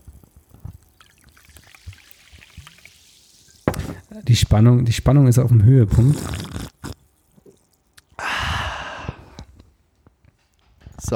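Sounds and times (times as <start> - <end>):
water pouring into a glass: 0.0 - 8.2
speech: 4.2 - 6.7.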